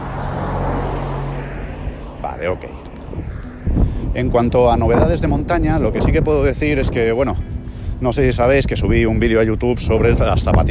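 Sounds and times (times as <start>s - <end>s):
car engine rumbling: 0.0s - 6.7s
broadband road noise: 0.0s - 10.7s
speech: 2.3s - 3.3s, 4.2s - 10.7s.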